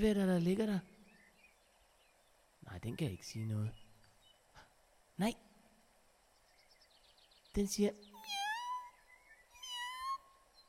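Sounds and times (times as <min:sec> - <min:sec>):
speech: 0:00.0 - 0:00.9, 0:02.6 - 0:03.8, 0:05.2 - 0:05.5, 0:07.6 - 0:08.1
cat meowing in a wicker garden chair: 0:08.2 - 0:08.9, 0:09.6 - 0:10.2.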